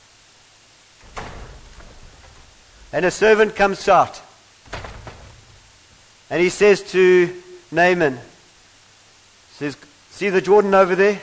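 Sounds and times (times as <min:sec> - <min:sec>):
door latch click: 0:01.0 - 0:03.7, 0:04.7 - 0:06.0
door opening: 0:01.0 - 0:06.3
speech: 0:02.9 - 0:04.2, 0:06.3 - 0:08.3, 0:09.6 - 0:11.2.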